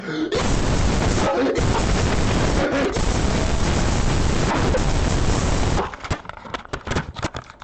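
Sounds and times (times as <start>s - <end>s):
loud screaming into a microphone: 0.4s - 5.8s.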